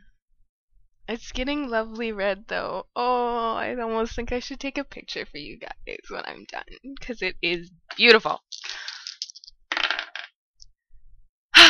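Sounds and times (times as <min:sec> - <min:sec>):
speech: 0:01.1 - 0:08.5
dice tumbling and knocking on a table: 0:08.5 - 0:10.4.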